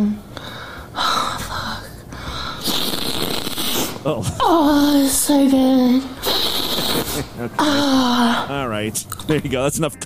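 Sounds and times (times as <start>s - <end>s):
person snorting a substance off a hand: 2.6s - 4.2s, 6.2s - 8.5s
speech: 4.0s - 6.2s, 7.4s - 10.0s.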